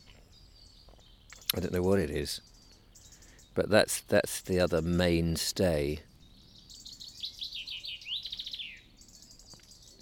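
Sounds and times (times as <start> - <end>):
small bird trilling high-pitched clicking and chirping notes in the morning: 0.3 - 3.6, 6.1 - 10.0
speech: 1.5 - 2.5, 3.6 - 6.1.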